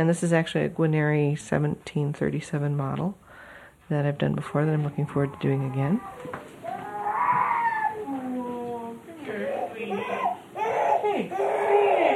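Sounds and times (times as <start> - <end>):
speech: 0.0 - 3.2, 3.9 - 6.5
8-month-old baby wailing on waking from a nap: 5.0 - 12.1.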